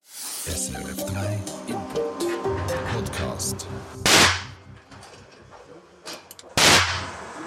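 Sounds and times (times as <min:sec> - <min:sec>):
speech: 0:00.4 - 0:04.5
gunshots at a shooting range: 0:04.0 - 0:04.5, 0:06.6 - 0:07.1.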